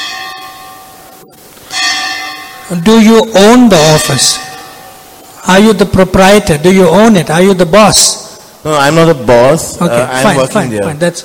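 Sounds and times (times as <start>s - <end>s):
bell ringing: 0.0s - 5.7s
speech: 2.7s - 4.5s, 5.4s - 11.2s.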